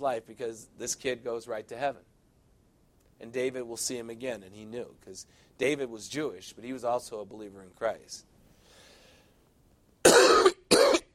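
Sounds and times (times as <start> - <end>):
speech: 0.0 - 2.2, 3.2 - 8.3
harsh broadband coughs: 10.0 - 11.1.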